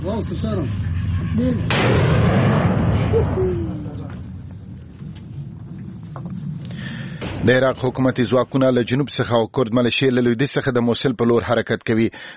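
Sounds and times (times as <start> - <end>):
speech: 0.0 - 2.5, 3.2 - 4.2, 7.4 - 12.3
artillery fire on the outskirts of Mosul during a military offensive: 1.7 - 4.3.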